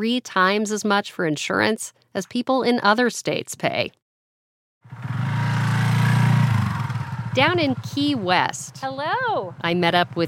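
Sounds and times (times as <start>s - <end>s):
speech: 0.0s - 4.0s, 7.4s - 10.2s
motorcycle engine rumbling as it pulls up in Key West Florida: 4.8s - 10.2s.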